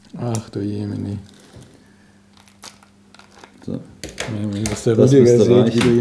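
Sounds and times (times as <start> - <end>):
faint steady hum: 0.0 - 5.9
speech: 0.2 - 1.3, 4.4 - 5.9
package plastic crinkling while unpacking: 1.0 - 3.7
package tearing while unpacking: 1.2 - 3.6.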